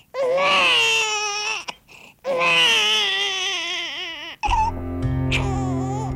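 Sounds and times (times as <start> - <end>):
baby wailing loudly: 0.1 - 6.1
steadier lower tonal sound: 4.5 - 6.1.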